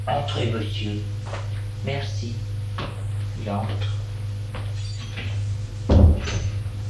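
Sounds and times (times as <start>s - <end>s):
speech: 0.0s - 2.5s, 3.4s - 4.0s
steady low hum: 0.0s - 6.8s
door shutting with a dull thump: 4.6s - 6.7s.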